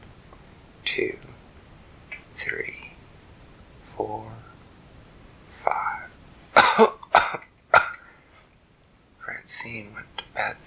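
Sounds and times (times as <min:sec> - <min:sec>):
speech: 0:00.8 - 0:01.3, 0:02.4 - 0:02.8, 0:04.0 - 0:04.5, 0:09.6 - 0:10.6
person coughing: 0:06.6 - 0:08.1.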